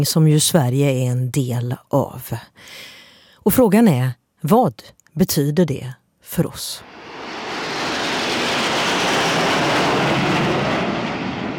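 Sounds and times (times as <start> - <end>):
speech: 0.0 - 7.1
fighter jets flying low over the rooftops of Paris: 6.8 - 11.5.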